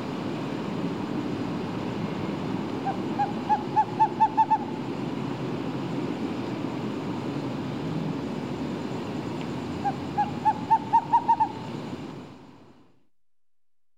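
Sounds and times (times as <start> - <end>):
steady traffic rumble: 0.0 - 12.7
screech owl hooting in rising series: 2.8 - 4.9, 9.8 - 11.8.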